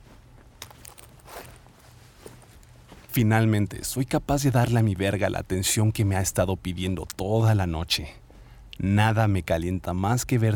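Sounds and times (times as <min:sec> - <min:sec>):
woman's soft footsteps walking to a bed: 0:00.0 - 0:03.7
low hum: 0:00.0 - 0:10.5
speech: 0:03.2 - 0:08.2, 0:08.8 - 0:10.5.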